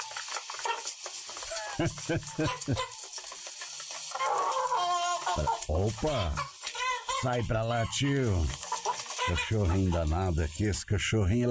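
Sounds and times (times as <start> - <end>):
scuffling and rustling of chickens being caught on a farm: 0.0 - 10.5
chickens squawking while being caught on a farm: 0.0 - 10.7
laughter: 1.4 - 3.0, 9.2 - 10.8
speech: 1.8 - 3.0, 5.4 - 6.5, 7.2 - 8.6, 9.3 - 11.4.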